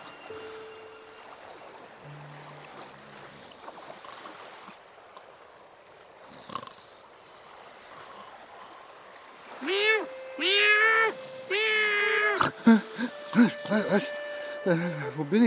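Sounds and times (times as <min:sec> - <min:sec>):
cat meowing: 0:09.6 - 0:12.6
speech: 0:13.4 - 0:15.4.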